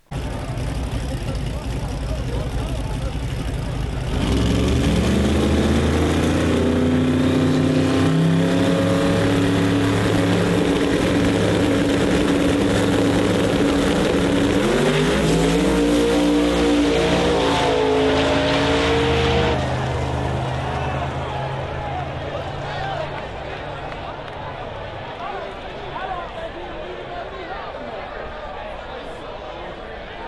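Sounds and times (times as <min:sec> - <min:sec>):
racing car engines roaring on a track: 0:00.0 - 0:30.2.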